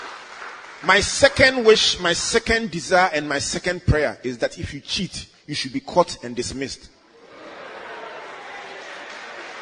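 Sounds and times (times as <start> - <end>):
crowd clapping: 0.0 - 2.2, 7.9 - 9.6
speech: 0.8 - 7.0
laughter: 7.2 - 9.6.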